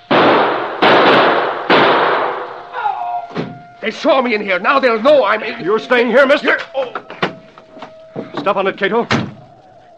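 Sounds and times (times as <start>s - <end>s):
gunshots at people in a car during a chase: 0.0s - 2.6s
speech: 3.8s - 7.0s, 8.4s - 9.2s.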